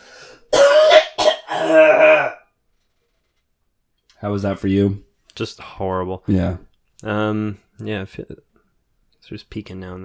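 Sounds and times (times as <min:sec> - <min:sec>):
harsh phlegmy coughing: 0:00.5 - 0:02.4
speech: 0:04.2 - 0:08.5, 0:09.2 - 0:10.0.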